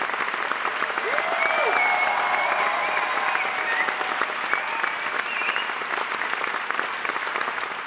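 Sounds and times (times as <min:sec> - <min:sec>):
large theatre audience applauding: 0:00.0 - 0:07.8
faint voices and cheers in the crowd: 0:00.8 - 0:06.2.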